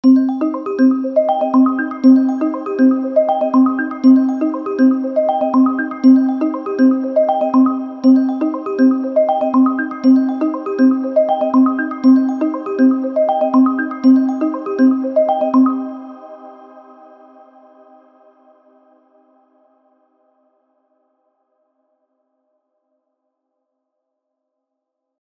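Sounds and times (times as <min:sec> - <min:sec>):
sixteenth-note synth arpeggio: 0:00.0 - 0:16.2.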